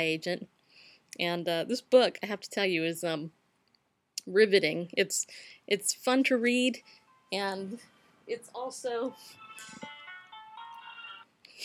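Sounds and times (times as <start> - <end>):
speech: 0.0 - 3.4, 4.2 - 9.9
mobile phone ringtone electronic melody: 6.8 - 7.5, 9.0 - 11.3.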